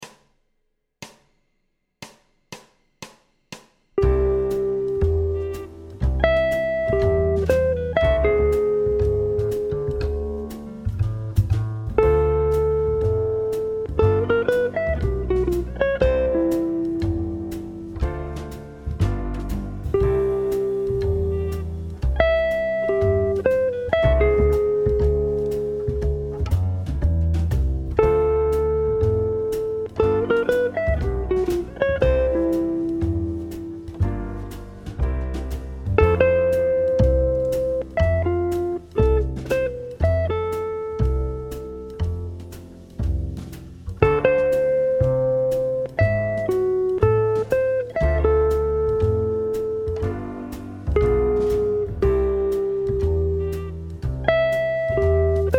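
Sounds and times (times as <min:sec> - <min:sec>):
high-pitched jazz guitar melody at 120 bpm: 0:04.0 - 0:55.5.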